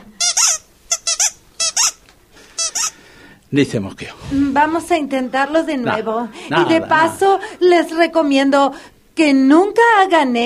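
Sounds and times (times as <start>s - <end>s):
small rubber squeaky doll toy being squeezed: 0.0s - 3.0s
speech: 3.5s - 10.4s.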